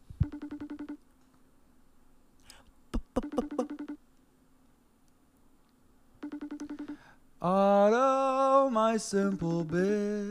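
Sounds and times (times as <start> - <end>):
phone call ringing in warbling electronic bursts: 0.2 - 1.0, 3.2 - 4.0, 6.2 - 7.0
speech: 7.4 - 8.1, 8.8 - 10.2.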